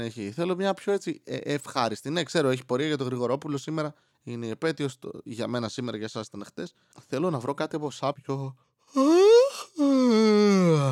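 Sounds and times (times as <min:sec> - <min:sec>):
speech: 0:00.0 - 0:09.4, 0:10.2 - 0:10.9
big drawn-out yawn: 0:08.9 - 0:10.9.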